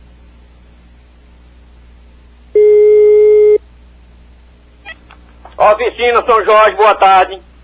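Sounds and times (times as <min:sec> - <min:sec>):
telephone busy tone after a dropped call: 0:02.6 - 0:03.6
speech: 0:05.6 - 0:07.5.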